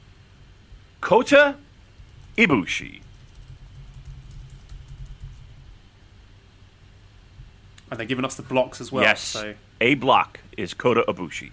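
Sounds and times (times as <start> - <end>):
low steady rumble: 0.0 - 9.8
hum: 0.0 - 11.5
speech: 1.0 - 1.6, 2.4 - 3.1, 7.9 - 11.5
typing on a computer keyboard: 2.1 - 2.4, 3.0 - 5.6.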